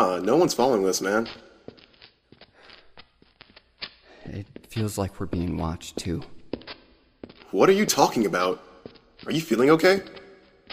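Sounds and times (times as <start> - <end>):
speech: 0.0 - 1.5, 4.3 - 6.4, 7.5 - 10.7
soft footsteps walking: 0.2 - 10.7.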